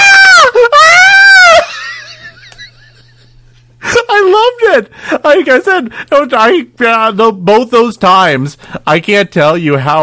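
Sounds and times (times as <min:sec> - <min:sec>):
cartoon Morlock character screaming: 0:00.0 - 0:01.9
speech: 0:04.8 - 0:10.0.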